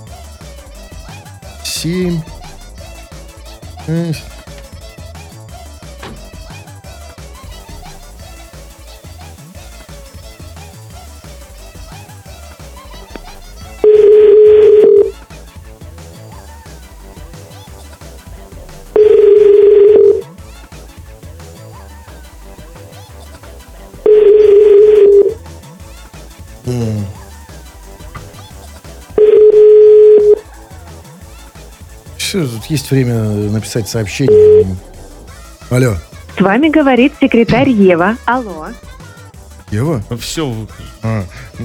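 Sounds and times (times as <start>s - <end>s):
faint music: 0.0s - 41.6s
speech: 1.8s - 2.4s, 3.9s - 4.4s, 32.4s - 34.9s, 35.7s - 38.9s, 39.7s - 41.6s
telephone ringback tone: 13.5s - 15.2s, 19.0s - 20.3s, 24.0s - 25.4s, 29.1s - 30.5s, 34.3s - 34.8s.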